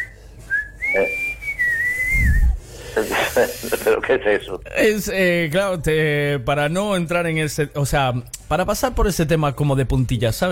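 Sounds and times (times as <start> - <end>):
person whistling in Silbo Gomero style: 0.0 - 2.6
speech: 3.0 - 10.5.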